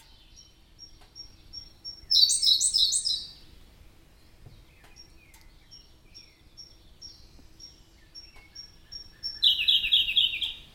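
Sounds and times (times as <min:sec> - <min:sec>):
Siberian blue robin Larvivora cyane ticking and trilling: 0:00.0 - 0:10.7.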